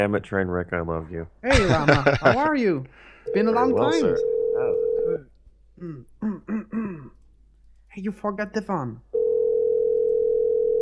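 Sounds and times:
speech: 0.0 - 4.3, 5.2 - 6.5, 8.0 - 9.1
laughter: 1.5 - 2.6
electronic telephone ringing tone from an outgoing call: 3.3 - 5.2, 9.2 - 10.7.

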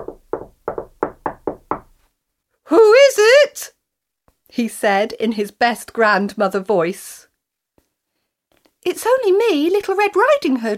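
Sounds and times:
solid knocking on a wooden door: 0.0 - 2.0
speech: 2.7 - 3.8, 4.5 - 7.3, 8.8 - 10.7.

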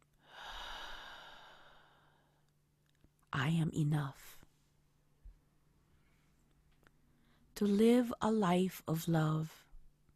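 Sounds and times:
slow exhale during a guided meditation: 0.2 - 2.4
speech: 3.4 - 4.4, 7.6 - 9.6.

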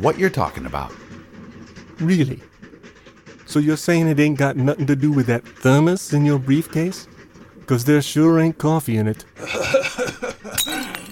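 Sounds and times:
speech: 0.0 - 1.0, 2.0 - 2.5, 3.5 - 7.1, 7.7 - 9.6
laughter: 9.4 - 11.1
wine glass tipping over and clattering: 10.6 - 11.1.

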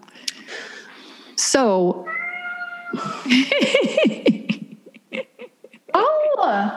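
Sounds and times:
speech: 1.4 - 2.1, 3.0 - 4.4
male cat meowing insistently: 2.0 - 3.1
laughter: 2.9 - 6.7.

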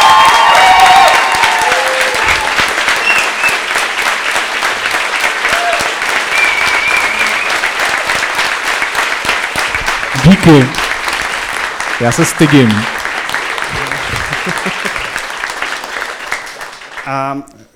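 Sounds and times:
faint cheers and whoops: 0.0 - 3.4, 5.4 - 7.6
large audience applause: 0.0 - 17.4
speech: 10.4 - 10.8, 12.0 - 13.0, 17.1 - 17.7
laughter: 13.6 - 15.3.

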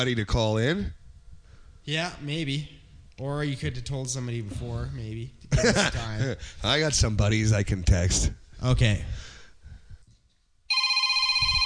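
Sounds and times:
speech: 0.0 - 1.0, 1.8 - 9.3
laughter: 5.5 - 6.5
telephone electronic ring: 10.7 - 11.6.

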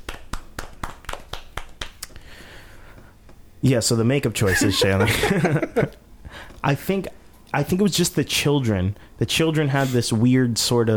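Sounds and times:
small group clapping in a quick steady rhythm: 0.0 - 2.2
speech: 3.6 - 6.0, 6.6 - 10.9
laughter: 4.4 - 6.0.

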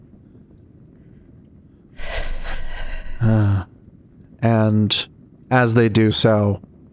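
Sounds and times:
voice imitating ragged breathing of a figure with a bag over their head: 2.0 - 3.6
speech: 3.2 - 3.5, 4.4 - 6.7.

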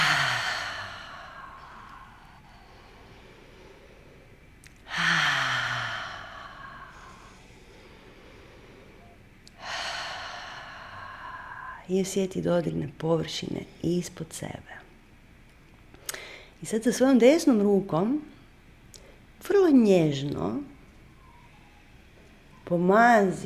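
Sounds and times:
person breathing slowly in through the nose and out through the mouth: 0.0 - 11.9
speech: 11.9 - 14.8, 16.6 - 18.4, 19.4 - 20.7, 22.7 - 23.4.

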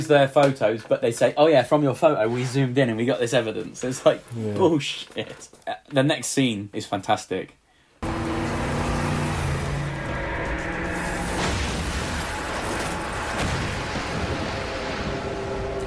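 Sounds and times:
speech: 0.0 - 7.6
car engine roaring: 8.0 - 15.8
churning rumbling noise: 8.0 - 15.8
car driving off a pier and crashing: 8.8 - 15.8.

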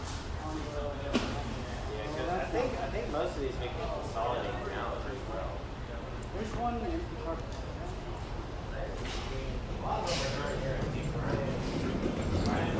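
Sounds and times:
murmur of overlapping voices inside a garden center: 0.0 - 12.7
short conversation about shopping carts: 0.4 - 12.7.

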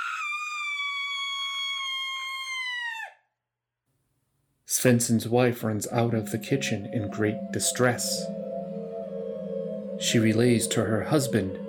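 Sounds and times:
person screaming in an inn: 0.0 - 3.1
speech: 4.7 - 8.4, 10.0 - 11.6.

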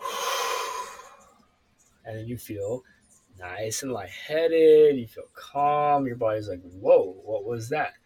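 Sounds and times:
slow deep breath in and out: 0.0 - 1.4
speech: 2.1 - 8.0.

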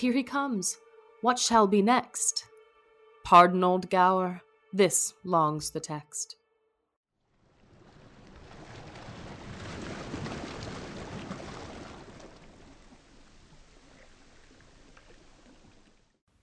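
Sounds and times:
speech: 0.0 - 2.5, 3.3 - 6.4
ocean waves breaking on the shore at Pentapolis: 7.4 - 14.8.

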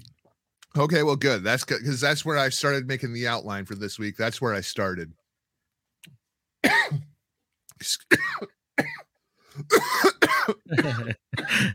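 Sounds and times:
speech: 0.8 - 5.2, 7.8 - 8.5, 10.7 - 11.7
person coughing from drink down the wrong pipe: 6.6 - 7.2, 8.1 - 11.7.

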